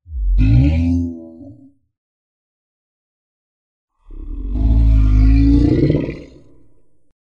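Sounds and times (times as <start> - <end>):
demon sounds: 0.1 - 1.6, 4.0 - 6.8.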